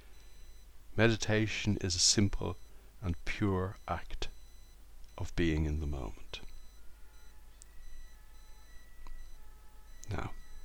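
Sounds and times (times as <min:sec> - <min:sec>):
low room hum: 0:00.0 - 0:10.6
speech: 0:01.0 - 0:04.3, 0:05.2 - 0:06.5, 0:10.1 - 0:10.4
faint siren holding a steady high tone: 0:02.5 - 0:10.6.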